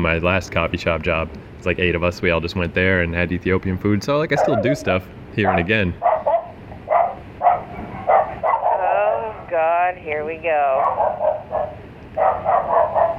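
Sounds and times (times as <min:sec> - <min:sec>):
speech: 0:00.0 - 0:06.1, 0:09.9 - 0:11.5
dog barking: 0:04.3 - 0:09.0, 0:10.8 - 0:13.1.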